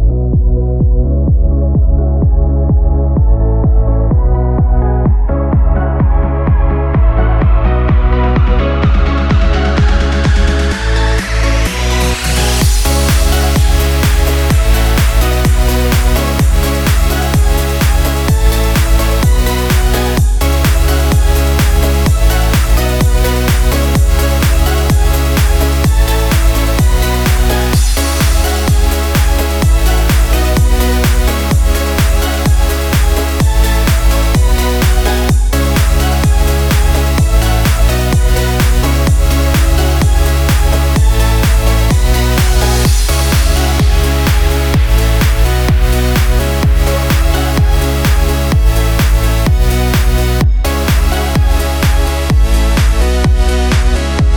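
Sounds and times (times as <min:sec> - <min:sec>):
positive upbeat dance pop music: 0:00.2 - 0:54.3.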